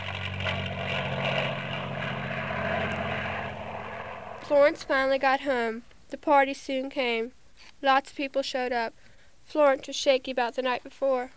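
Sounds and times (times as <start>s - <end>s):
propeller airplane droning overhead: 0.0s - 5.2s
speech: 4.5s - 11.3s.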